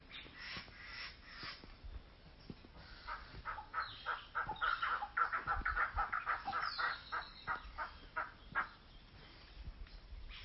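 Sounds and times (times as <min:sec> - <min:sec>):
chicuaco bird calls: 0:00.0 - 0:10.4.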